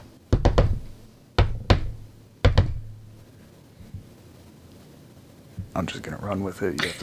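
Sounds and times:
knocking on a door: 0.3s - 3.2s
speech: 5.8s - 7.0s.

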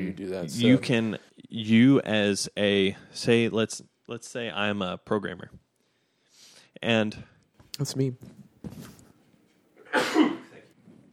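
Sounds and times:
speech: 0.1s - 5.6s, 6.8s - 8.9s
person sneezing: 9.8s - 10.6s.

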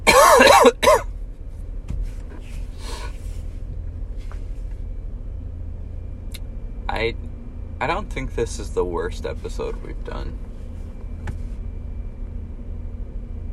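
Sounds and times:
person coughing: 0.0s - 1.1s
speech: 7.8s - 10.5s.

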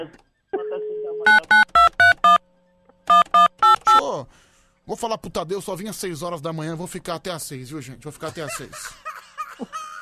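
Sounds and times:
speech: 0.0s - 0.3s, 4.9s - 9.0s
telephone number dialed on a touch-tone keypad: 1.3s - 2.4s, 3.1s - 4.0s
laughter: 8.2s - 10.0s.

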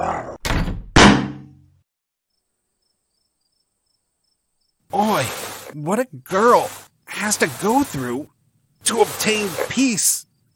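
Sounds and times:
foam heads thudding against a front door: 0.4s - 1.4s
speech: 5.2s - 10.3s.

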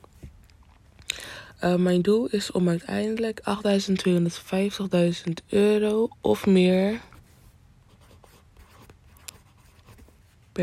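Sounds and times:
speech: 1.6s - 7.1s
faulty pen scratching across paper: 7.9s - 10.2s.

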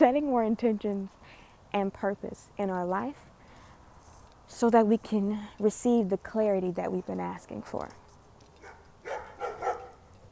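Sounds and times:
speech: 0.0s - 3.3s, 4.5s - 8.0s
large dog barking: 8.6s - 10.1s.

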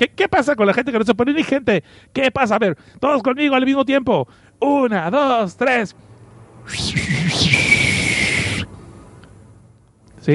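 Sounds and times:
speech: 0.0s - 6.1s, 6.7s - 7.9s
person whistling a single sustained note: 6.7s - 8.7s.

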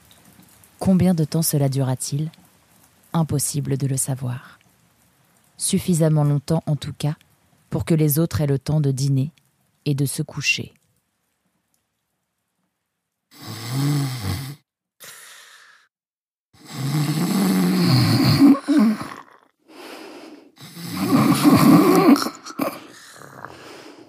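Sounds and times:
speech: 0.8s - 2.4s, 3.1s - 4.6s, 5.6s - 10.8s
sleeping people snoring with wet snorts: 13.4s - 14.6s, 16.6s - 19.4s, 20.6s - 24.0s.

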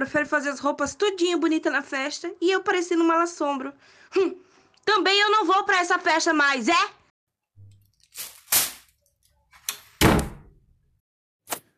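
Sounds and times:
speech: 0.0s - 7.0s
door slamming shut hard: 10.0s - 10.6s.

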